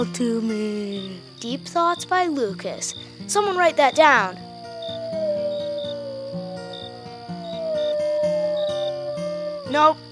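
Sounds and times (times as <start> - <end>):
speech: 0.0 - 4.5, 9.7 - 10.1
crickets chirping: 0.0 - 10.1
low music: 0.0 - 10.1
lone coyote howling: 4.0 - 10.1.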